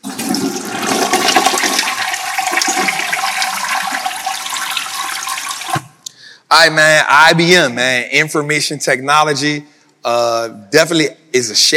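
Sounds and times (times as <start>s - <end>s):
toilet flushing: 0.0s - 6.0s
speech: 6.6s - 11.7s.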